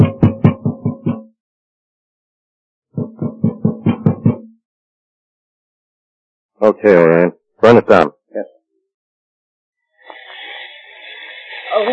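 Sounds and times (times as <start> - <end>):
heavy pounding on a bolted door: 0.0 - 1.3, 3.0 - 4.6
speech: 6.6 - 8.5, 11.8 - 11.9.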